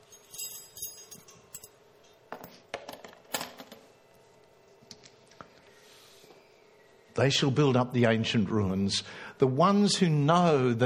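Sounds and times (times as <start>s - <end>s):
bunch of keys jingling and clinking: 0.0s - 1.8s
speech: 7.2s - 10.8s.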